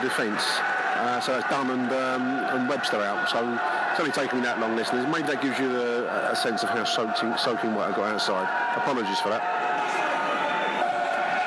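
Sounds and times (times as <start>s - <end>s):
football crowd chanting in support: 0.0s - 5.6s, 9.5s - 11.4s
speech: 0.0s - 9.6s.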